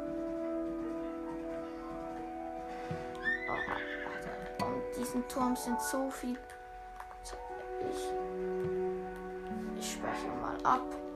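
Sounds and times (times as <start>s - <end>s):
video game sustained musical tones: 0.0s - 11.1s
horse whinny in a video game: 3.2s - 4.5s
speech: 5.1s - 6.6s.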